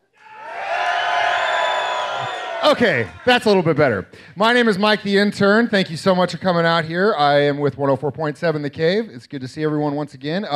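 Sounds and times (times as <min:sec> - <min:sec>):
large crowd of NFL fans cheering and shouting: 0:00.1 - 0:03.7
speech: 0:02.6 - 0:10.5.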